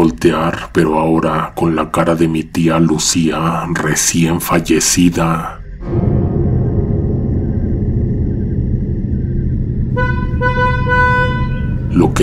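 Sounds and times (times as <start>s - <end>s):
speech: 0.2s - 6.2s
deep rumbling engine: 4.5s - 12.2s
car horn honking: 9.9s - 12.2s
traffic noise: 9.9s - 12.2s.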